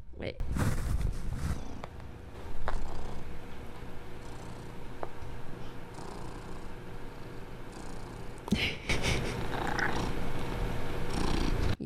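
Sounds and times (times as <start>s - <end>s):
speech: 0.2s - 0.8s
rustling or handling noises: 0.5s - 1.9s
cat purring: 2.6s - 3.3s, 4.2s - 4.8s, 5.9s - 8.5s, 9.1s - 11.8s
laughter: 8.5s - 9.5s.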